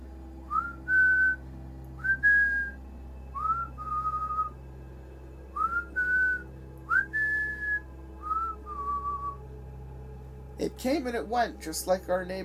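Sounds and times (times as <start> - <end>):
faint low hum: 0.0 - 12.4
eerie human whistling a slow tune: 0.5 - 1.4, 2.0 - 4.6, 5.5 - 9.4
speech: 10.6 - 12.4.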